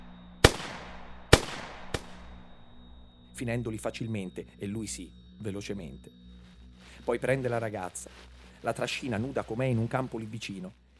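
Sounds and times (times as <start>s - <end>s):
gunshots fired from the rear right window of a car: 0.4s - 2.2s
speech: 3.4s - 6.2s, 7.1s - 10.8s.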